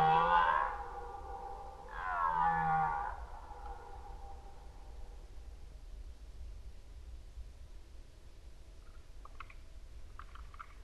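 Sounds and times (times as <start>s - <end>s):
red deer roaring in rut: 0.0s - 4.0s.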